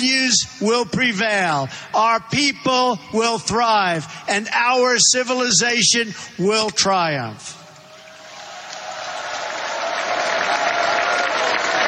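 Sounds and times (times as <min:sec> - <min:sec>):
speech: 0:00.0 - 0:07.6
large crowd applauding and cheering after a speech: 0:07.7 - 0:11.8.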